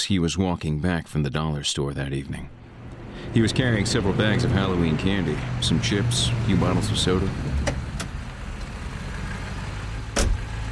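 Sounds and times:
speech: 0:00.0 - 0:02.6, 0:03.2 - 0:07.8
car engine rumbling while driving, heard from inside the vehicle: 0:02.0 - 0:10.7
road noise heard from inside the vehicle: 0:02.1 - 0:10.7.

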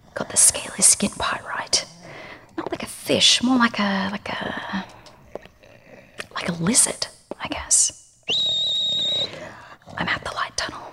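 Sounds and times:
quiet hum: 0:00.0 - 0:10.9
speech: 0:00.4 - 0:01.9, 0:03.1 - 0:04.9, 0:06.6 - 0:08.0
high-pitched whistle blast: 0:08.3 - 0:09.3.

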